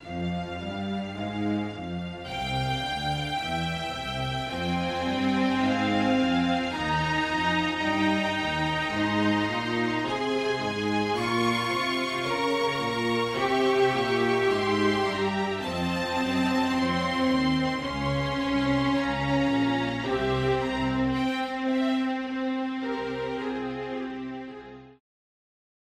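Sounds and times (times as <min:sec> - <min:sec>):
legato bowed strings: 0:00.0 - 0:25.0.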